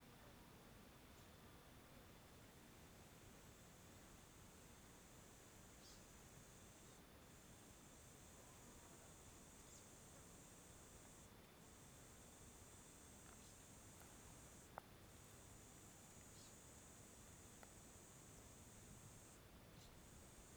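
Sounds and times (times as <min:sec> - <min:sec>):
wind: 0:00.0 - 0:20.5
cicada in afternoon natural ambience: 0:03.2 - 0:20.5.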